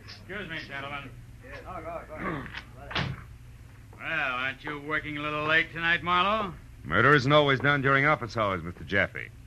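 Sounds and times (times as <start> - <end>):
speech: 0.3 - 3.1, 4.0 - 9.4
door opening and shutting with a solid thud: 2.6 - 3.3.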